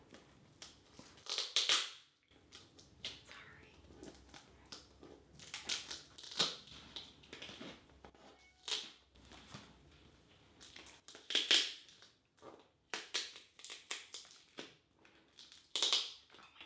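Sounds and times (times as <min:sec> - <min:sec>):
cutting plastic packaging while unboxing a microphone: 0:00.5 - 0:03.3, 0:03.9 - 0:09.7, 0:10.6 - 0:16.4.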